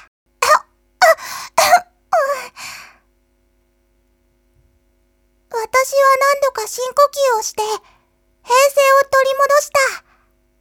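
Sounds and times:
coughing after choking on a piece of banana: 0.4s - 1.9s
speech: 5.8s - 10.0s.

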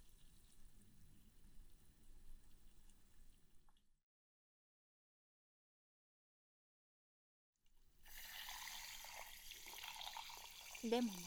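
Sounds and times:
carbonated juice fizzing: 8.0s - 11.2s
bubbles crackling: 8.1s - 11.2s
speech: 10.8s - 11.2s.

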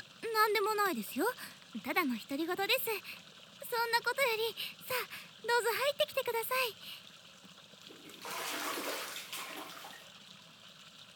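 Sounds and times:
speech: 0.4s - 7.0s
hot spring water rushing and splashing in an open-air bath: 7.9s - 10.2s.

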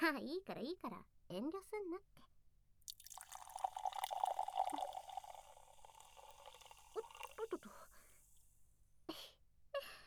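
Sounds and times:
speech: 0.0s - 2.3s
drink pouring into a glass with a soft gurgle: 2.9s - 8.4s
quiet drips: 2.9s - 8.4s.

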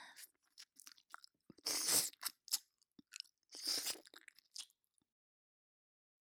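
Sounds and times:
chewing and eating: 0.1s - 4.8s
wet crunches and bites: 0.2s - 4.8s.

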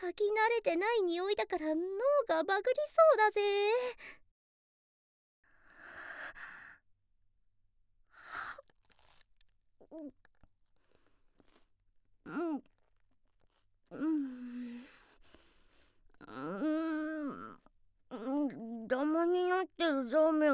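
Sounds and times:
speech: 0.0s - 4.2s, 9.9s - 10.2s, 12.3s - 12.7s, 13.9s - 14.9s, 16.2s - 20.5s
person chewing a crunchy potato croquette snack: 8.6s - 9.5s, 10.2s - 11.8s.

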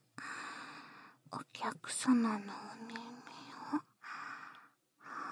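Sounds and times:
person whispering into both ears on a binaural microphone: 1.3s - 3.9s.

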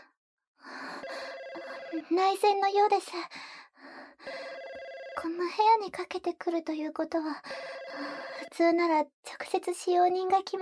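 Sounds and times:
telephone ringing: 1.0s - 2.4s, 4.3s - 5.5s, 7.5s - 8.5s
speech: 2.0s - 3.4s, 5.2s - 10.6s.

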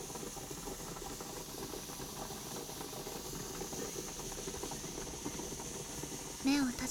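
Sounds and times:
facial steamer hissing steam onto a person's face: 0.0s - 6.8s
faint bubbling and rattling: 0.0s - 6.8s
speech: 6.5s - 6.8s.

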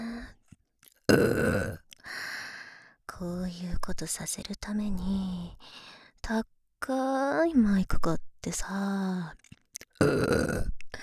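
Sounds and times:
person belching: 1.1s - 1.8s, 10.0s - 10.7s
speech: 1.1s - 1.8s, 3.2s - 10.8s
breathing: 2.0s - 3.1s, 5.6s - 6.2s.

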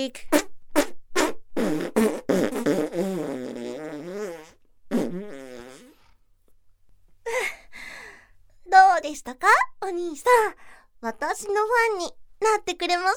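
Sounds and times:
speech: 0.0s - 0.5s, 9.3s - 13.1s
voice imitating farting with raspberry tones: 0.2s - 6.2s.

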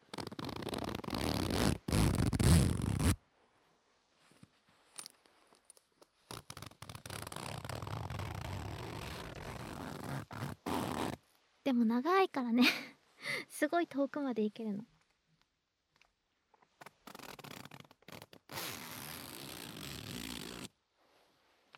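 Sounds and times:
cheap lightweight pencil-case zipper rasping: 0.0s - 3.2s, 6.3s - 11.2s, 16.8s - 20.7s
speech: 11.7s - 12.9s, 13.6s - 14.9s.

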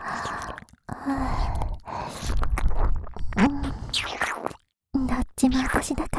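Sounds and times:
ASMR ear licking wet mouth sounds: 0.0s - 0.8s, 1.4s - 4.6s
speech: 5.4s - 6.1s.

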